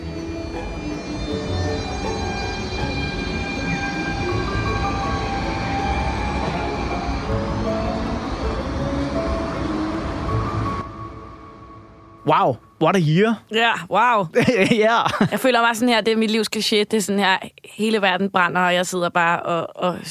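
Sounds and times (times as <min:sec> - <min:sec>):
high metallic wheel squeals of commuter train: 0:00.0 - 0:10.8
S-train commuter train rumbling along rails: 0:00.0 - 0:11.7
speech: 0:12.3 - 0:20.0
laughter: 0:14.4 - 0:15.4.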